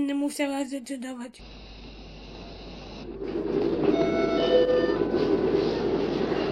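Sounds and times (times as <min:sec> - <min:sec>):
speech: 0:00.0 - 0:01.8
train rumbling along the rails: 0:02.2 - 0:06.5
faint metallic squeals of a train: 0:03.9 - 0:05.8.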